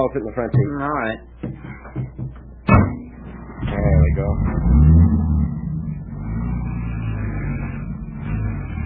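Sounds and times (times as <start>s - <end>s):
speech: 0.0s - 2.0s, 3.7s - 4.9s
station wagon engine driving off: 3.2s - 8.8s.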